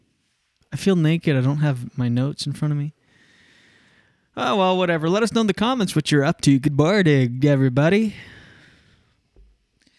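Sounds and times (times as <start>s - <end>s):
speech: 0.8s - 3.0s, 4.4s - 8.4s
breath noise rushing into a microphone: 3.0s - 4.3s, 8.1s - 9.2s.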